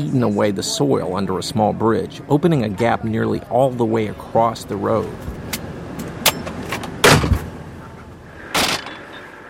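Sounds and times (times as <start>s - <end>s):
speech: 0.0s - 5.4s
car engine rumbling on a mountain road: 0.0s - 9.4s
car door clunking open with a rattling thump: 5.4s - 7.5s.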